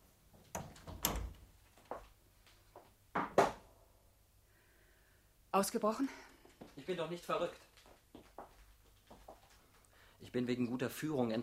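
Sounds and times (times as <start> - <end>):
door being closed with soft clunks and thuds: 0.5 - 1.4
speech: 5.5 - 7.7, 10.3 - 11.4.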